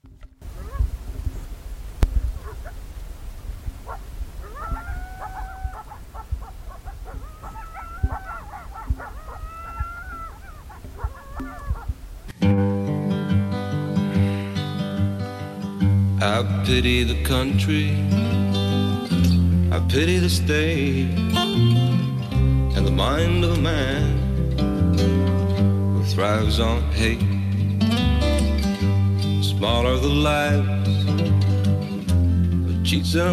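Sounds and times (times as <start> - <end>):
low rumble: 0.0 - 12.4
pack of coyotes yipping and howling at night: 0.4 - 1.6, 2.2 - 12.3
music: 12.4 - 33.3
speech: 16.6 - 18.4, 19.8 - 21.7, 23.0 - 24.1, 26.2 - 27.4, 29.6 - 31.3, 32.9 - 33.3.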